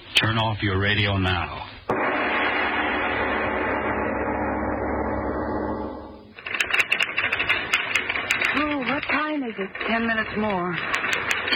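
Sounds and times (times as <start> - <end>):
speech: 0.2 - 1.8, 9.6 - 11.2
sustained droning tone: 1.9 - 7.4
typewriter clacking: 6.4 - 11.5.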